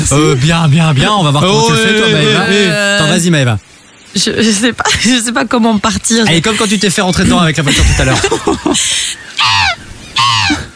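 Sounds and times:
speech: 0.1 - 9.6
laughter: 7.6 - 9.2
person imitating crow cawing: 9.4 - 10.7.

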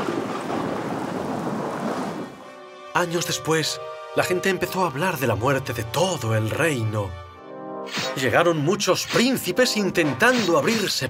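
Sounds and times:
steady rain during a storm: 0.0 - 2.4
thunder rumbling during a storm: 0.0 - 2.4
speech: 3.0 - 7.2, 8.2 - 11.0.

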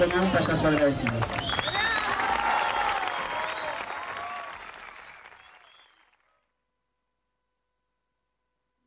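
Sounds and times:
speech: 0.0 - 1.6
audience applause at a live event: 0.0 - 6.3.

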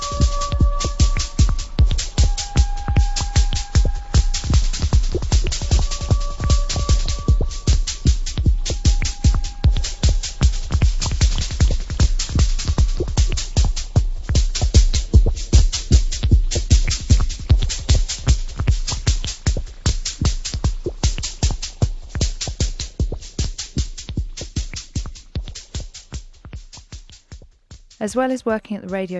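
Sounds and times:
early electronic proto-techno music: 0.0 - 13.8
fast steady pulsing electronic beat: 0.0 - 27.3, 28.0 - 29.1
speech: 28.0 - 29.1.

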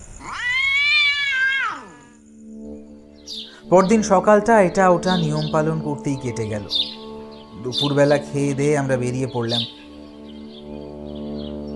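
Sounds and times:
cat meowing at a window: 0.2 - 2.2
speech: 3.7 - 6.9, 7.6 - 9.8.

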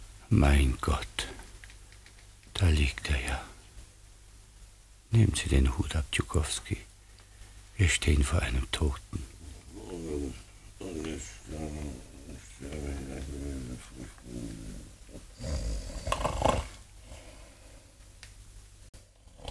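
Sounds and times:
speech: 0.3 - 1.4, 2.6 - 3.5, 5.1 - 6.9, 7.8 - 9.3
man lying asleep snoring: 9.4 - 17.7, 19.2 - 19.4.

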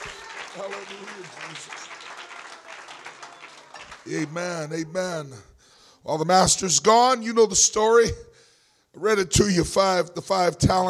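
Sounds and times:
congregation clapping hands in praise during a church sermon: 0.0 - 4.9
speech: 0.6 - 2.2, 4.0 - 8.3, 9.0 - 10.8.

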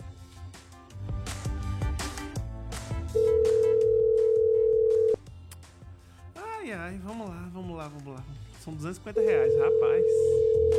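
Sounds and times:
music: 0.0 - 10.7
telephone dial tone: 3.2 - 5.2, 9.2 - 10.7
speech: 7.9 - 10.7.

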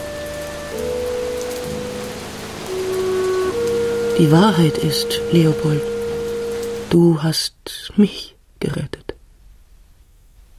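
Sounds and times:
low sustained musical tones: 0.0 - 7.4
rain pattering down: 0.0 - 10.5
speech: 4.2 - 5.9, 6.9 - 9.0.

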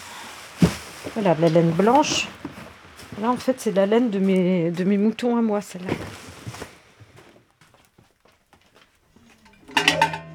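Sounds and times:
faint shuffling: 0.0 - 9.6
speech: 1.0 - 2.4, 3.2 - 6.2
cooking pot clattering while ash is prepared for washing sheep's wool: 9.4 - 10.3.

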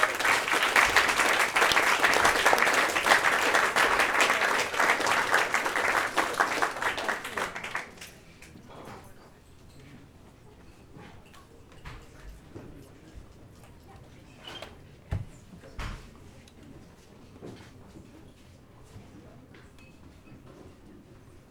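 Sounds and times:
audience applause at a presentation event: 0.0 - 8.2.

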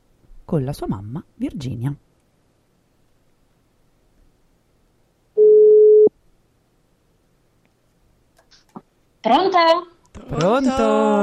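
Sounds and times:
speech: 0.5 - 2.1, 9.2 - 11.2
telephone dialing tone while calling a guest: 5.4 - 6.1.

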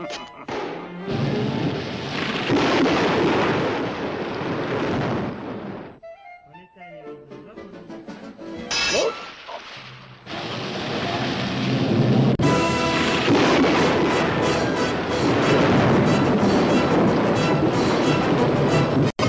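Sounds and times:
speech: 0.1 - 0.3
machine-made artificial thunderstorm in an animated cartoon: 0.5 - 6.0, 10.3 - 19.1.

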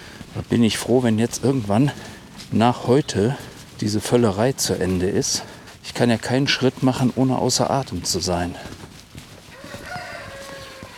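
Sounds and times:
speech: 0.4 - 8.8
rooster crowing: 9.5 - 10.9.

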